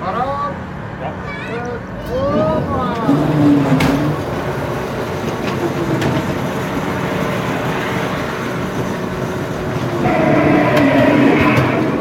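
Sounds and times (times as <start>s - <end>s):
fairground ghost train ride rumbling along its track at a Swiss Kilbi fair: 0.0s - 12.0s
rising and falling wails: 9.7s - 12.0s.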